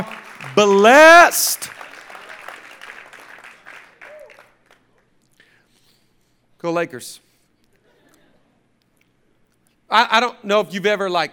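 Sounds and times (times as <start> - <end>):
scattered voices calling out: 0.0 - 1.6
speech: 0.0 - 1.7, 6.6 - 7.2, 9.9 - 11.3
audience applauding: 0.0 - 4.9.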